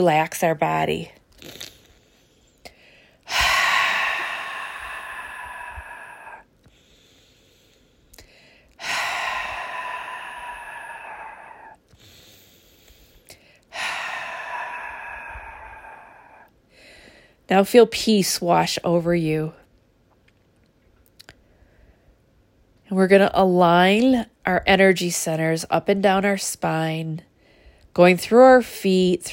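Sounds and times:
speech: 0:00.0 - 0:01.7, 0:17.5 - 0:19.6, 0:22.9 - 0:27.3, 0:28.0 - 0:29.3
faint inhales: 0:01.6 - 0:17.4, 0:27.4 - 0:27.9
deep breaths exhaled loudly for relaxation: 0:02.0 - 0:17.4.

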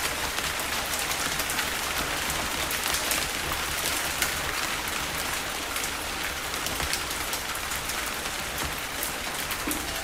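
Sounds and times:
gentle night rain falling steadily: 0:00.0 - 0:10.0.

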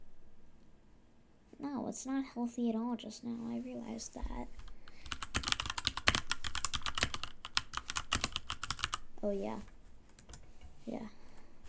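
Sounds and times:
speech: 0:01.6 - 0:04.6, 0:09.2 - 0:09.7, 0:10.9 - 0:11.2
rapid typing on a computer keyboard: 0:04.9 - 0:09.0, 0:10.2 - 0:10.4.

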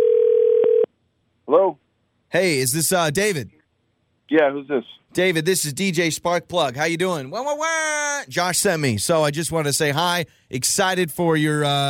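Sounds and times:
telephone dial tone: 0:00.0 - 0:00.9
speech: 0:01.6 - 0:03.6, 0:04.3 - 0:11.8.

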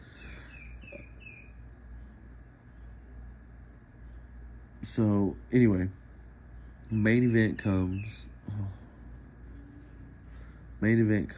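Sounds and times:
faint high bird chirps at night: 0:00.0 - 0:03.3, 0:06.3 - 0:10.6
low rumble and hiss of nighttime background: 0:00.0 - 0:11.3
speech: 0:04.8 - 0:06.0, 0:06.9 - 0:08.8, 0:10.8 - 0:11.3.

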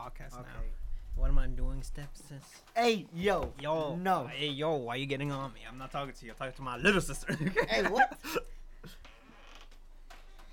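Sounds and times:
speech: 0:00.1 - 0:09.1
laughter: 0:07.1 - 0:08.4
chair creaking: 0:09.0 - 0:10.5.

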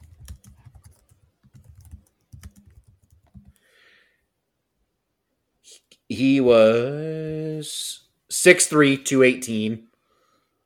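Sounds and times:
fingers typing on a computer keyboard: 0:00.0 - 0:03.6
speech: 0:05.7 - 0:09.9.

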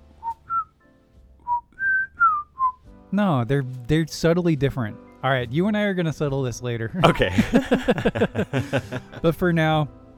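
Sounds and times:
person whistling a jaunty march-like war film theme: 0:00.2 - 0:00.8, 0:01.4 - 0:02.8
speech: 0:03.1 - 0:10.0
laughter: 0:07.0 - 0:09.4.

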